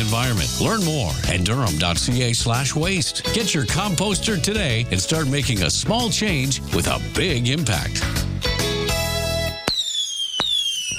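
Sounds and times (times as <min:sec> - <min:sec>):
speech: 0:00.1 - 0:08.3
fireworks banging: 0:09.5 - 0:10.9
high falling whistle of fireworks: 0:09.5 - 0:10.9
dense crackling burst of fireworks: 0:09.6 - 0:10.9.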